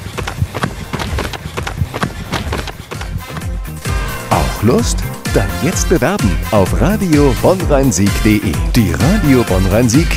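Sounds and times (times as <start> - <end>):
constant rushing background: 0.0 - 3.8
footsteps of someone running: 0.0 - 3.8
speech: 4.6 - 10.1.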